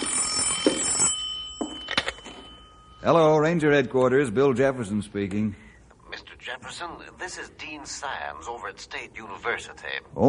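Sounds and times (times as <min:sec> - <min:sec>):
old-fashioned telephone bell ringing at a ranger headquarters: 0:00.0 - 0:03.2
speech: 0:03.0 - 0:05.6, 0:06.7 - 0:10.2.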